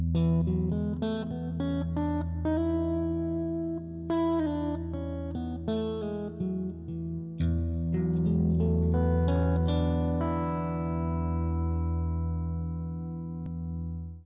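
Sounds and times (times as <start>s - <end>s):
mixolydian scale: 0.1s - 14.2s.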